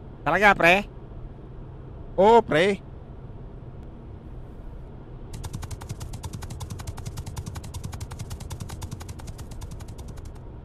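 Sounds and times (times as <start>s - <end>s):
speech: 0.2s - 0.9s, 2.2s - 2.9s
big motorcycle engine speeding past: 5.4s - 10.4s.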